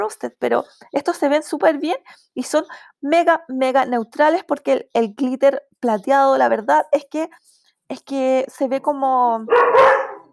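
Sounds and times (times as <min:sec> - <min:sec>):
speech: 0:00.0 - 0:10.0
dog barking: 0:09.5 - 0:10.3.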